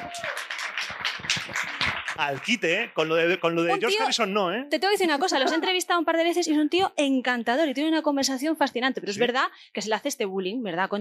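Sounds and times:
small group clapping: 0:00.0 - 0:04.2
speech: 0:02.2 - 0:10.9.

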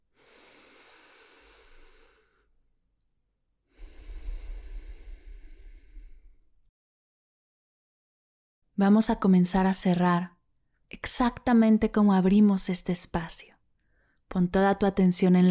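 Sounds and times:
slow deep breathing during a guided meditation: 0:00.0 - 0:02.6, 0:03.7 - 0:06.6, 0:13.8 - 0:14.2
speech: 0:08.8 - 0:13.5, 0:14.3 - 0:15.4.

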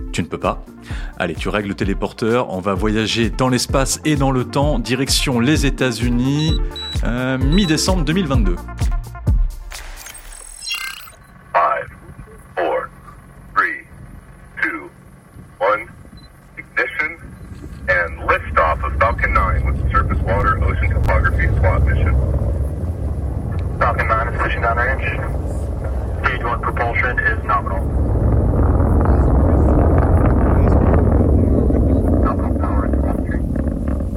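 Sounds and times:
speech: 0:00.2 - 0:09.0
rocket launch engine roar: 0:11.1 - 0:34.1.

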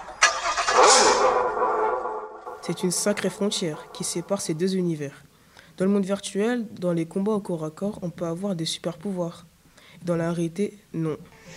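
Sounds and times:
car engine cranking and catching: 0:00.0 - 0:04.6
speech: 0:02.6 - 0:11.5.

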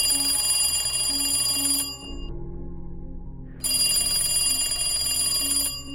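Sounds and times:
old telephone ringing with metallic bell trills: 0:00.0 - 0:02.3, 0:03.6 - 0:05.9.

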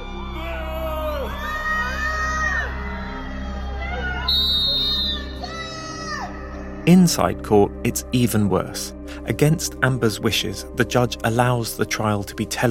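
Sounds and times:
crowd outdoors shouting and jeering: 0:00.0 - 0:06.6
speech: 0:06.9 - 0:12.6.

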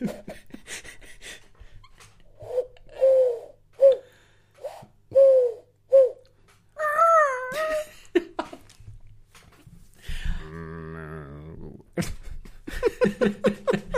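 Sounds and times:
voice imitating an asthmatic pigeon cooing: 0:02.4 - 0:04.0, 0:05.1 - 0:06.2, 0:06.8 - 0:07.8
strained vocal noises: 0:10.4 - 0:12.0
laughter: 0:12.0 - 0:13.9.

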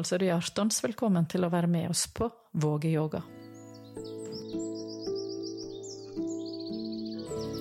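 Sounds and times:
speech: 0:00.0 - 0:03.4
birds chirping and twittering outdoors by a blooming pond at Tjøme: 0:03.1 - 0:07.5.

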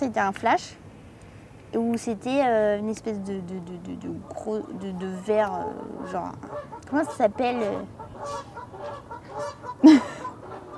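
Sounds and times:
speech: 0:00.0 - 0:00.8, 0:01.7 - 0:10.1
geese or ducks honking: 0:04.2 - 0:10.7
laughter: 0:09.8 - 0:10.5.

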